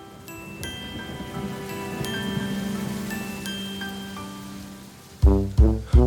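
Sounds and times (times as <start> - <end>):
steady rain falling: 0.0 - 6.0
loud punchy musical notes: 5.2 - 6.0.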